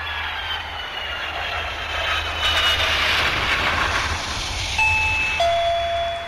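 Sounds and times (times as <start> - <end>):
steady roaring noise: 0.0 - 6.2
two-tone descending electronic doorbell chime: 4.8 - 6.2.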